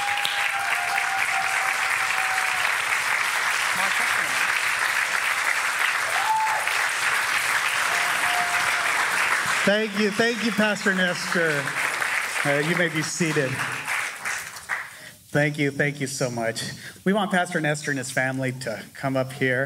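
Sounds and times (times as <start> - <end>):
faint tonal whistles or cheers: 0.0 - 2.8, 6.1 - 6.8, 7.8 - 9.0
large congregation applauding: 0.0 - 15.0
speech: 9.7 - 11.8, 12.4 - 13.8, 15.3 - 19.6.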